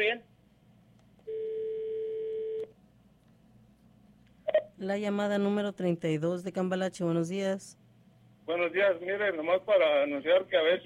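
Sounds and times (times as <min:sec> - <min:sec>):
steady electronic telephone tone as a call is put on hold: 0:01.2 - 0:02.7
speech: 0:04.8 - 0:07.8, 0:08.5 - 0:10.8.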